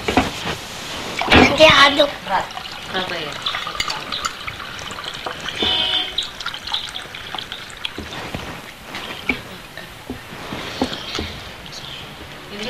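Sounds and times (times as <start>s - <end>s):
liquid poured by hand while preparing food: 0.2s - 11.7s
speech: 1.6s - 3.6s.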